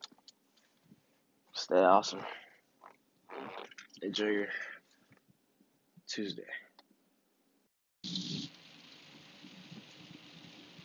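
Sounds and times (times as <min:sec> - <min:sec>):
speech: 0:01.7 - 0:02.4, 0:04.0 - 0:04.7, 0:06.1 - 0:06.6
rain hitting a surface: 0:08.1 - 0:10.8.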